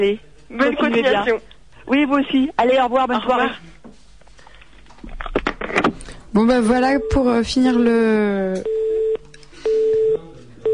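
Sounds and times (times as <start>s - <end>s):
speech: 0.0s - 3.7s, 6.4s - 8.8s
faint noise: 0.0s - 10.7s
telephone line tone after a call ends: 6.8s - 7.5s, 8.6s - 10.7s.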